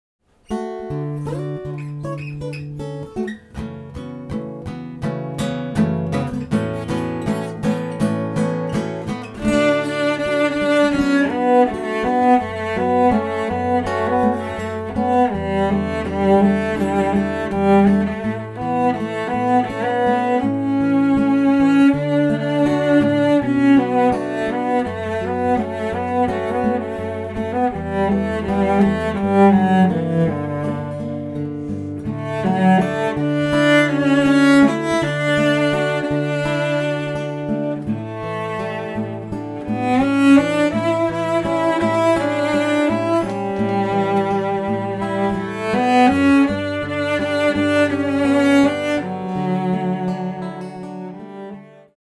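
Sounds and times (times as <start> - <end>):
guitar: 0.2 - 52.0
cello: 0.5 - 52.0.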